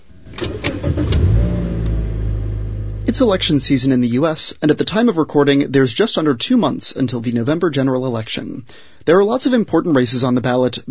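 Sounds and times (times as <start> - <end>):
car engine idling low in a shaded parking garage: 0.0 - 3.9
car starter cranking in a shaded parking garage: 0.2 - 2.1
speech: 3.1 - 10.8.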